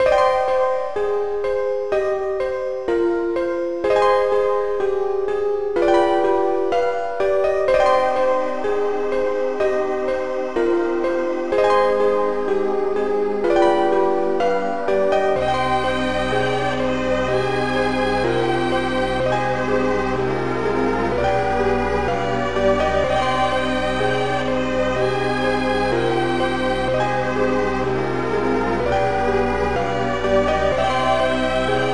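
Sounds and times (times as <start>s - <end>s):
piano: 0.0s - 31.9s
viol: 7.9s - 31.9s.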